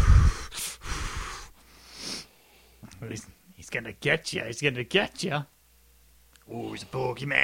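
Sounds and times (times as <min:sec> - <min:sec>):
heavy rasping breathing: 0:00.0 - 0:02.8
speech: 0:03.0 - 0:05.6, 0:06.5 - 0:07.4.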